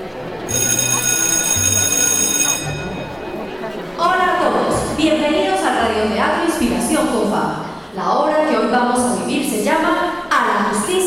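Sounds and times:
low murmur: 0:00.0 - 0:11.0
loud electric theatre bell ringing before a play: 0:00.5 - 0:03.7
speech: 0:06.6 - 0:11.0.

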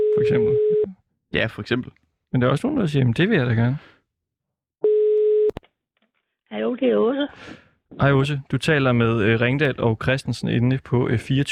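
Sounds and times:
telephone ringback tone during outgoing call: 0:00.0 - 0:00.9, 0:04.8 - 0:05.5
speech: 0:00.2 - 0:03.9, 0:06.5 - 0:11.5.

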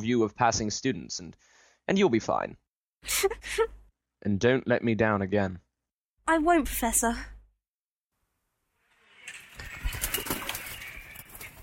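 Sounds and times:
speech: 0:00.0 - 0:05.6, 0:06.3 - 0:07.3
owl wings flapping in flight: 0:09.2 - 0:11.6.

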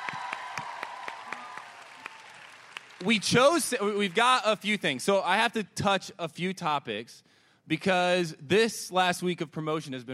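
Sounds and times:
audience applause: 0:00.0 - 0:04.2
speech: 0:03.0 - 0:10.1.

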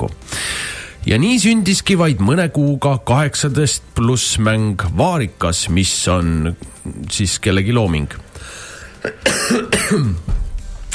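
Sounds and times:
speech: 0:01.0 - 0:10.4
throat clearing from a tickle in the throat: 0:09.0 - 0:10.2
coughing from a tickle in the throat: 0:09.0 - 0:10.3.

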